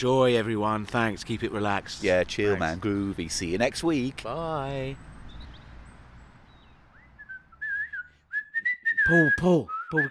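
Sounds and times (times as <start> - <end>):
speech: 0.0 - 5.1, 9.1 - 10.0
person whistling a tune: 7.2 - 10.0.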